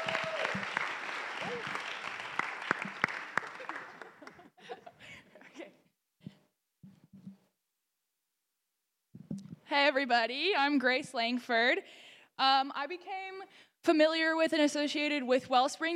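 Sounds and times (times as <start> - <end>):
crowd clapping and cheering: 0.0 - 4.6
speech: 9.7 - 13.2, 13.8 - 15.9.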